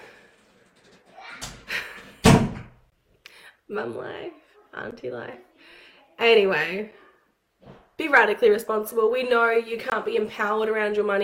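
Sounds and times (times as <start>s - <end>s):
door pulled shut with a sharp slam: 1.2s - 2.8s
door rattling knocks: 2.2s - 2.8s
speech: 3.7s - 5.5s, 6.2s - 7.0s, 7.6s - 11.2s.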